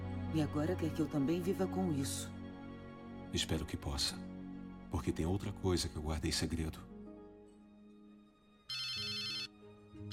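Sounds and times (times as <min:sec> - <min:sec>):
speech: 0:00.3 - 0:02.4, 0:03.3 - 0:04.3, 0:04.9 - 0:06.9
phone ringtone: 0:08.7 - 0:10.1.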